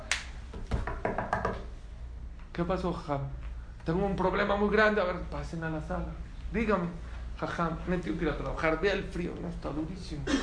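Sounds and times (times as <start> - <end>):
knocking on a door: 0.7 - 1.7
speech: 2.6 - 10.4.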